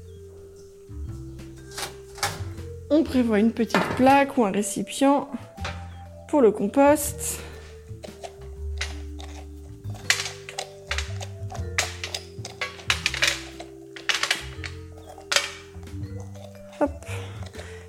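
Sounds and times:
speech: 2.9s - 5.5s, 6.3s - 7.5s
spoon scraping seeds out of a red kuri squash: 7.0s - 17.8s.

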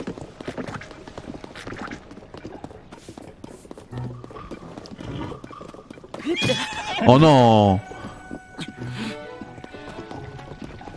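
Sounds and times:
video game horse hooves clip-clopping: 0.0s - 10.9s
video game horse whinnying: 4.0s - 10.2s
speech: 6.4s - 8.0s.

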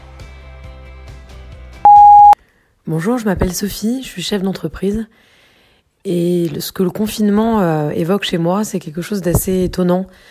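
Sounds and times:
soft music: 0.0s - 2.4s
loud steady electronic beep: 1.9s - 2.4s
speech: 2.9s - 5.4s, 6.0s - 10.2s.

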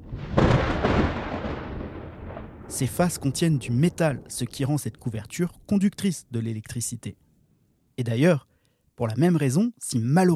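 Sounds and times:
loud thunderclap: 0.0s - 5.7s
speech: 2.7s - 7.2s, 8.0s - 10.3s.

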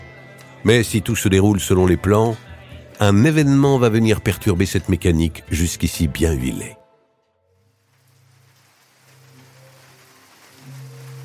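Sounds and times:
speech: 0.6s - 6.8s
heavy rain pouring: 7.6s - 11.2s.

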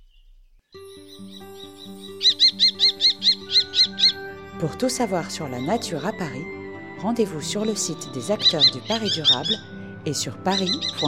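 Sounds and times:
speech: 1.2s - 3.2s, 4.6s - 11.0s
falcon giving a shrill call: 1.5s - 6.4s, 7.2s - 11.0s.

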